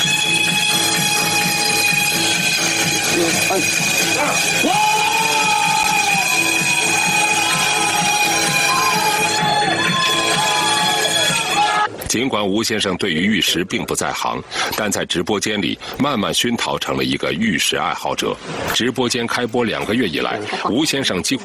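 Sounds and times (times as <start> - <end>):
crowd cheering and shouting: 0.0 - 12.0
speech: 12.1 - 21.4.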